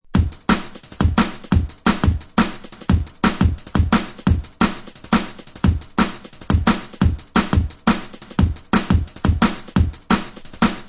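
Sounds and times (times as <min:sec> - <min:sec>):
drum fill breaks: 0:00.1 - 0:10.8.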